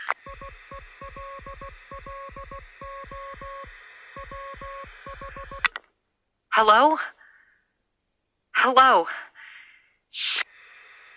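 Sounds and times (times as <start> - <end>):
Morse code beeping tones over radio: 0.2 - 5.7
speech: 6.6 - 7.2, 8.6 - 9.2, 10.1 - 10.4.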